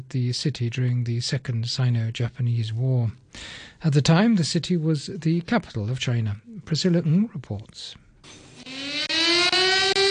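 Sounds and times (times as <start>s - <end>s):
speech: 0.1s - 8.4s
air-raid siren wailing at a memorial ceremony in China: 8.5s - 10.0s.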